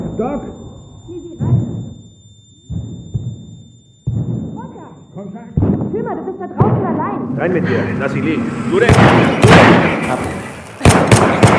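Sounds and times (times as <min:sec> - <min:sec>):
speech: 0:00.2 - 0:00.6, 0:06.0 - 0:10.4
gunshots: 0:08.8 - 0:11.5.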